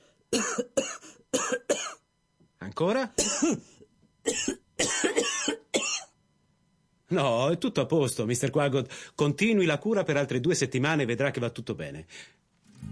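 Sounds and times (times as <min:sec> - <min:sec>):
person coughing: 0:00.3 - 0:02.0, 0:03.2 - 0:06.2
person clearing throat raspily: 0:00.4 - 0:02.0, 0:03.2 - 0:06.2
speech: 0:02.8 - 0:04.5, 0:07.1 - 0:12.4.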